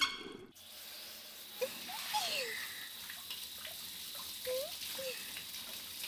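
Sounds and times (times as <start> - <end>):
shower water running: 0.2 - 6.0
shower water splashes and droplets: 1.6 - 6.0.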